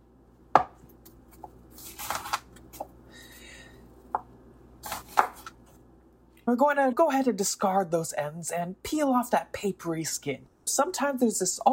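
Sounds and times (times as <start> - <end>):
sharp knife slicing the root end of an onion on a cutting board: 4.8 - 5.6
speech: 6.5 - 11.7.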